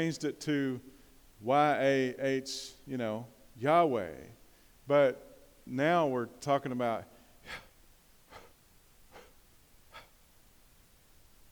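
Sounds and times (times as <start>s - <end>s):
speech: 0.0s - 7.6s
soft breathy exhalations voicing a name: 7.2s - 10.2s.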